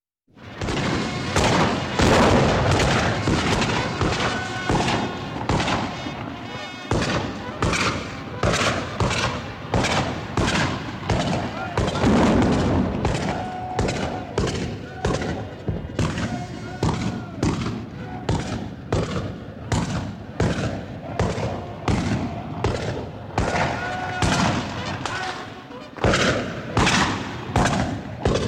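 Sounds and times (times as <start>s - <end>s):
soldiers gunfire exchange: 0.4s - 28.4s.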